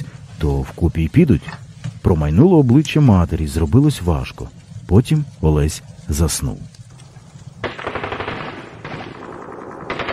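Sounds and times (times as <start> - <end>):
speech: 0.4 - 6.8
rapid machine gun fire: 7.6 - 10.1.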